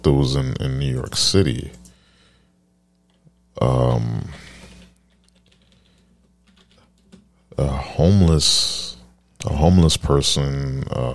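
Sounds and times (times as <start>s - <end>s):
speech: 0.0s - 1.8s, 3.6s - 4.4s, 7.6s - 11.1s
typing on a keyboard: 4.6s - 7.3s.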